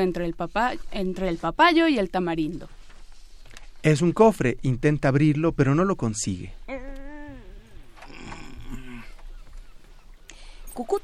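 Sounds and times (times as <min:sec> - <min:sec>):
speech: 0:00.0 - 0:02.8, 0:03.8 - 0:06.8, 0:10.8 - 0:11.0
guinea fowl calling: 0:09.1 - 0:10.7.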